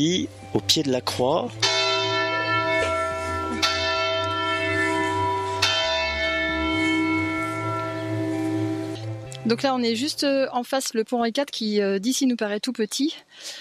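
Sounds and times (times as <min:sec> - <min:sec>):
speech: 0:00.0 - 0:01.8, 0:09.4 - 0:13.5
church bells ringing: 0:01.4 - 0:10.1.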